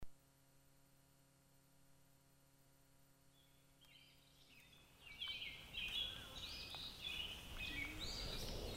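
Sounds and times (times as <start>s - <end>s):
low steady hum: 0.0s - 8.7s
robin singing warbled phrases: 3.3s - 8.7s.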